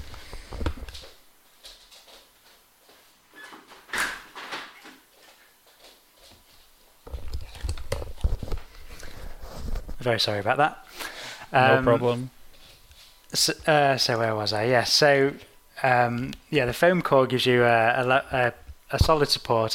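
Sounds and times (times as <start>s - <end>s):
doors being shut: 3.4s - 5.0s
speech: 10.0s - 10.8s, 11.5s - 12.4s, 13.3s - 19.7s.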